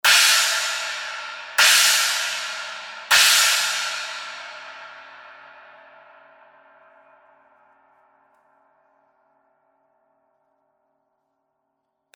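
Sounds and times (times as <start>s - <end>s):
21 inch ultra hammered china brilliant cymbal: 0.0s - 8.9s.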